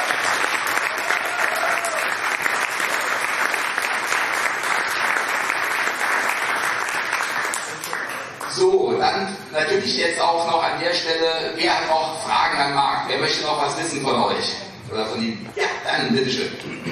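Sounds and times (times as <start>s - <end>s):
sustained applause from a sizeable audience: 0.0s - 8.6s
speech: 9.6s - 16.9s.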